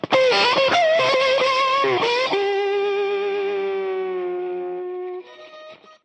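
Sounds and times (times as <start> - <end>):
fuzzy slide guitar: 0.0 - 6.0.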